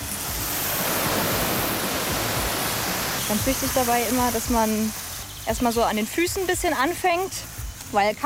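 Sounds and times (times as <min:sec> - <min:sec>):
water spraying from a hose: 0:00.0 - 0:08.2
speech: 0:03.3 - 0:08.2.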